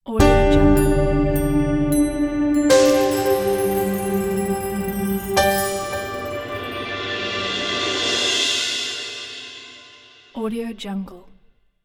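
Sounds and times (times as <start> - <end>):
ambient elegant logo music: 0.2 - 9.9.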